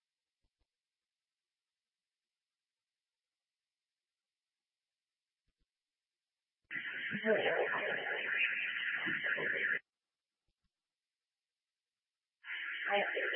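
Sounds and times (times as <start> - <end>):
building alarm blaring over a two-way radio: 6.7 - 9.8, 12.4 - 13.3
crackly two-way radio: 6.7 - 9.8, 12.4 - 13.3
speech: 7.1 - 9.8, 12.9 - 13.2.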